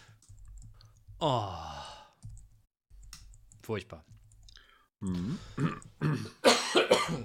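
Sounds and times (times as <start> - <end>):
speech: 1.2 - 1.7, 3.7 - 4.2, 5.0 - 7.2
harsh coughing: 5.6 - 7.2.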